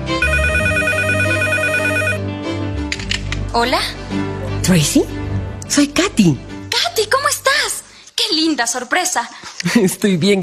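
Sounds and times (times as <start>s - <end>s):
electronic telephone ringtone for an incoming call: 0.2s - 2.2s
speech: 3.5s - 7.4s, 8.3s - 10.4s.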